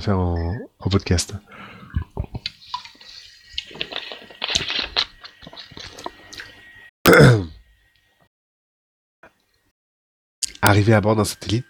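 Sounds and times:
speech: 0.0 - 2.1, 10.7 - 11.6
person taking a small sip of water: 1.7 - 6.7.

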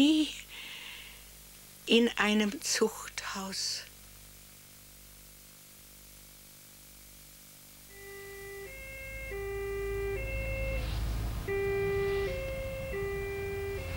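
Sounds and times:
speech: 1.9 - 3.9
emergency siren wailing in an alternating two-tone pattern: 7.9 - 13.9
low vehicle rumble: 8.6 - 13.9.

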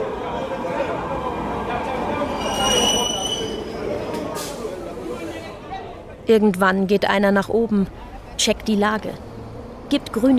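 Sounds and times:
train rolling through an underground metro station at Plaza de Catalunya: 0.0 - 10.3
thin high metallic train wheel squeals: 2.3 - 3.8
speech: 6.3 - 9.3, 9.9 - 10.3.

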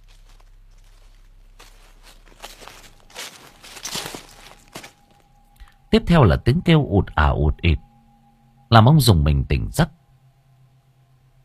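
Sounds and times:
rustling footsteps in a garden at night: 0.0 - 5.8
speech: 5.9 - 7.8, 8.7 - 10.0.

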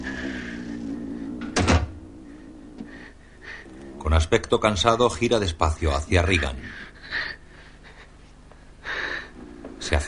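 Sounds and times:
quiet steady hum: 0.0 - 10.0
door closing: 1.4 - 2.0
speech: 4.1 - 6.9.

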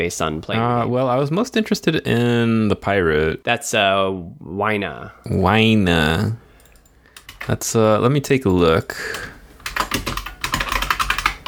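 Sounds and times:
speech: 0.0 - 6.4, 7.5 - 9.3
loud computer keyboard typing: 6.6 - 7.6, 8.5 - 11.4.

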